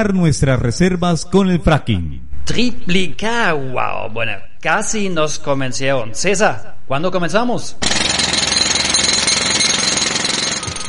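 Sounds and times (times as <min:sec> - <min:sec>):
speech: 0:00.0 - 0:08.0
power drill grinding: 0:07.8 - 0:10.8.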